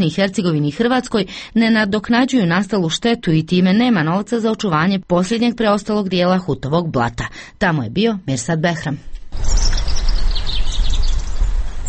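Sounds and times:
speech: 0:00.0 - 0:09.7
birds chirping in the Hutovo blato wetland nature park near Čapljina: 0:09.4 - 0:11.8.

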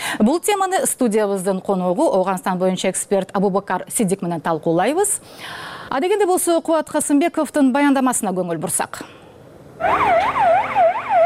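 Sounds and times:
speech: 0:00.1 - 0:09.2, 0:09.8 - 0:10.5
ambulance siren wailing in Afghanistan: 0:09.8 - 0:11.2.

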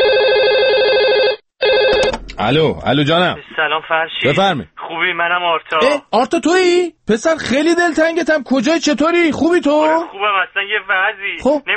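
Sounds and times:
telephone ringing with warbling electronic trill: 0:00.0 - 0:02.4
speech: 0:02.4 - 0:11.7.

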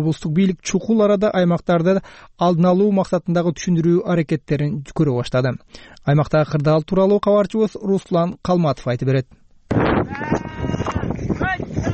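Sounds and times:
speech: 0:00.0 - 0:10.4
sheep bleating while being driven to a lake for watering: 0:10.1 - 0:11.1.

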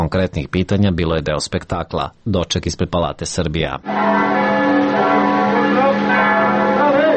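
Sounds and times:
speech: 0:00.0 - 0:05.4
church bells ringing in Belgrade: 0:03.8 - 0:07.1.

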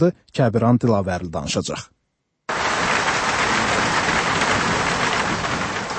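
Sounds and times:
speech: 0:00.0 - 0:02.0
heavy rain falling in Baku: 0:02.5 - 0:05.9.

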